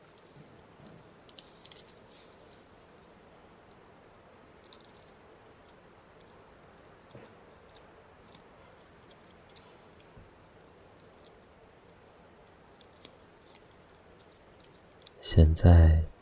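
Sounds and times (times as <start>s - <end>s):
quiet outdoor ambience: 0.0s - 16.2s
pandas chewing bamboo: 0.1s - 15.2s
speech: 15.3s - 16.1s.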